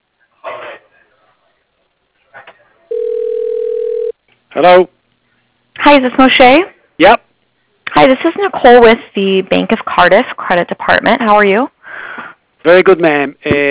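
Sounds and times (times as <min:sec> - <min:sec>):
telephone line tone while a call is transferred: 0:02.9 - 0:04.1
speech: 0:04.6 - 0:04.9, 0:05.9 - 0:07.1, 0:08.1 - 0:11.7, 0:12.6 - 0:13.6.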